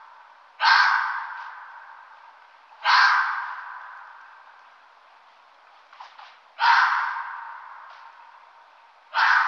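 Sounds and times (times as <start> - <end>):
red fox giving harsh rasping barks: 0.6 - 1.8, 2.8 - 4.1, 6.6 - 7.9, 9.1 - 9.4.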